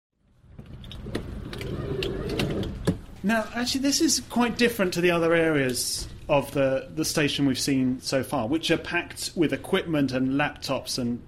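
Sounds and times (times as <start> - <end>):
doors of a small padded sleeping cubicle rustling and scraping shut: 0.5 - 3.2
speech: 3.2 - 11.2.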